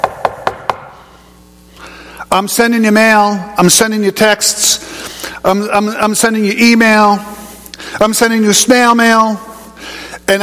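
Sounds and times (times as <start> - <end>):
knocks on a hard surface: 0.0 - 0.9
speech: 2.3 - 7.3, 8.0 - 9.5, 10.3 - 10.4.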